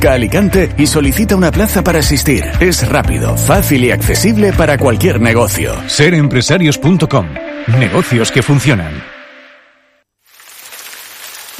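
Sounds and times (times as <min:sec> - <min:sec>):
speech: 0:00.0 - 0:09.1
rain falling on a track surface: 0:10.2 - 0:11.5.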